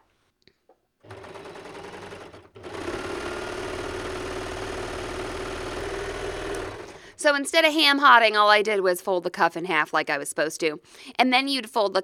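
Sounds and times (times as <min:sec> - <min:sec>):
sewing machine motor whirring while stitching a seam along a folded cuff: 0:01.0 - 0:07.4
speech: 0:07.2 - 0:12.0.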